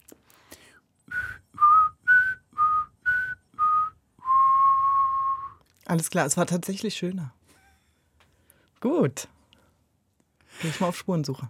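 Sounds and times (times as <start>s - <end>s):
person whistling a short melody: 1.1s - 5.6s
speech: 5.9s - 7.4s, 8.8s - 9.3s, 10.6s - 11.4s.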